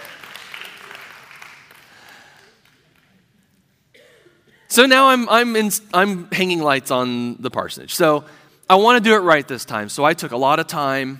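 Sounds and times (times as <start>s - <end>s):
audience crowd clapping: 0.0s - 3.3s
speech: 4.8s - 11.1s.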